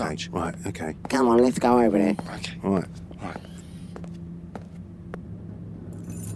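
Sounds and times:
speech: 0:00.0 - 0:03.5
low hum: 0:00.0 - 0:06.3
car keys on a fob jangling: 0:05.9 - 0:06.3.

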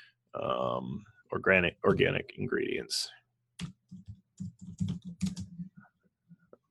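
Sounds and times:
speech: 0:00.4 - 0:04.1
rapid typing on a computer keyboard: 0:03.6 - 0:05.7.

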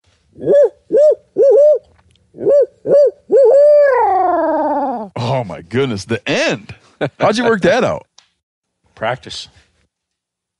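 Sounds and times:
man imitating a hoot owl call with his voice: 0:00.3 - 0:05.2
speech: 0:00.4 - 0:00.7, 0:05.7 - 0:08.1, 0:09.0 - 0:09.6.

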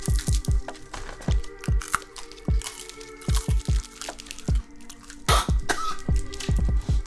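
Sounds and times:
crunching hard novelty joke candy being chewed: 0:00.0 - 0:07.0.

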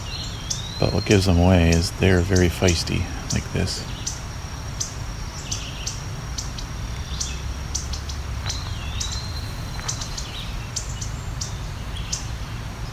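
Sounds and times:
scattered high chirps: 0:00.0 - 0:12.5
mourning dove: 0:00.0 - 0:12.9
red-eyed vireo calling overhead: 0:00.0 - 0:12.9
steady insect buzz: 0:00.0 - 0:12.9
speech: 0:00.8 - 0:04.1.

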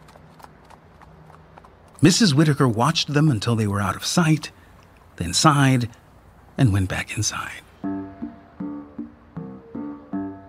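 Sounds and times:
horse hooves trotting clip-clop: 0:00.0 - 0:05.2
low hum: 0:00.0 - 0:07.8
speech: 0:02.0 - 0:04.6, 0:05.2 - 0:06.0, 0:06.6 - 0:07.7.

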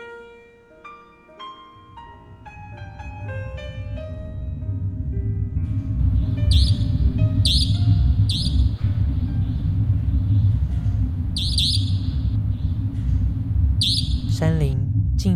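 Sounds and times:
steady low rumbling ambience: 0:01.9 - 0:15.3
nightingale calling at night in a mountain forest: 0:06.5 - 0:08.8, 0:11.4 - 0:12.7, 0:13.8 - 0:14.4.

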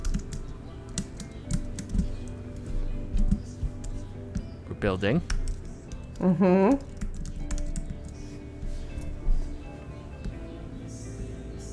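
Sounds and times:
rapid clicking of keys on a computer keyboard: 0:00.0 - 0:04.0, 0:05.3 - 0:08.2
low steady musical hum: 0:00.0 - 0:11.7
speech: 0:04.8 - 0:05.4, 0:06.2 - 0:06.9.

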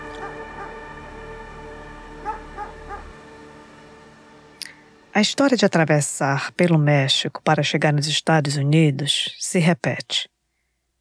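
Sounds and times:
dogs barking: 0:00.0 - 0:00.8, 0:02.2 - 0:03.2
steady low hum: 0:00.0 - 0:06.9
speech: 0:05.2 - 0:10.3.

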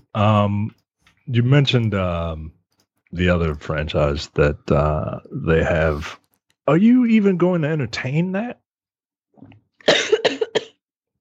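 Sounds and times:
speech: 0:00.2 - 0:08.6
woman having a coughing fit: 0:09.8 - 0:10.8.

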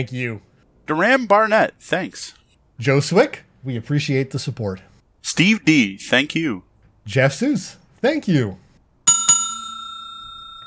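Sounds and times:
speech: 0:00.0 - 0:08.6
bell ringing twice with sharp metallic strikes: 0:09.1 - 0:10.6.

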